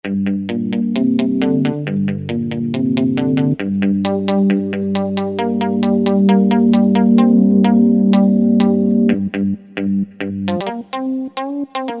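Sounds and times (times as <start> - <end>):
muted guitar on a Kurzweil K2000 synthesizer: 0.0 - 11.9.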